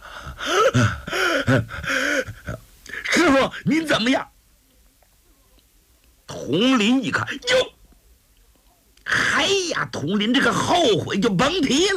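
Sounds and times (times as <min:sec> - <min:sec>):
person imitating a man gasping for breath with mouth wide open: 0:00.0 - 0:03.1
speech: 0:00.7 - 0:02.0, 0:03.3 - 0:04.3, 0:06.5 - 0:07.7, 0:09.7 - 0:11.9.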